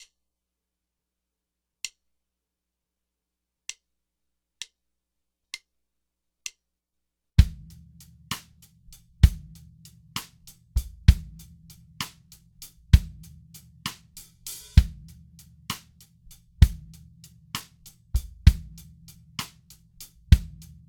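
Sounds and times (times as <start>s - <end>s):
drums panning test: 7.4s - 20.8s.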